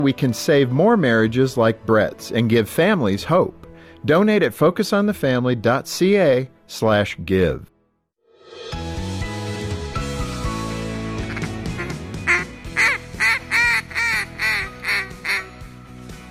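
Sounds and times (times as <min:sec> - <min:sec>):
speech: 0:00.0 - 0:07.7
music: 0:00.0 - 0:16.2
duck call blown imitating duck quacks: 0:11.3 - 0:15.6.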